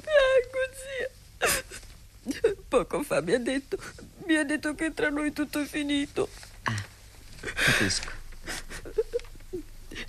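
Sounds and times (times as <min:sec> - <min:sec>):
woman crying with wavering wails and whimpering moans: 0:00.1 - 0:02.6, 0:08.5 - 0:10.0
speech: 0:02.7 - 0:06.8, 0:07.6 - 0:08.2.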